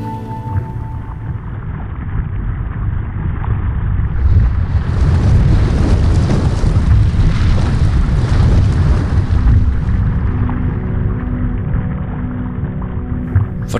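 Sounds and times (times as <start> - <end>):
volcanic eruption roaring: 0.4 - 13.7.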